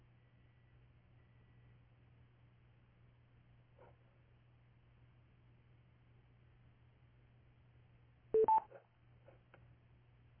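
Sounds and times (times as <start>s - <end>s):
faint low hum: 0.0s - 10.3s
telephone keypad tones on a landline: 8.4s - 8.7s.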